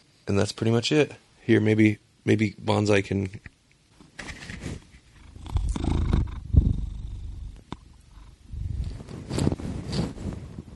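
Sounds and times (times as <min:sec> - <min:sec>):
speech: 0:00.3 - 0:03.5
cat purring: 0:05.0 - 0:10.7.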